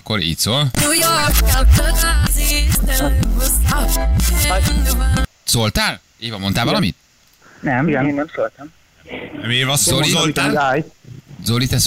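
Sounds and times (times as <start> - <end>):
speech: 0.1 - 7.0, 7.6 - 11.8
upbeat pop music with pulsing bass beat and layered synths: 0.8 - 5.3.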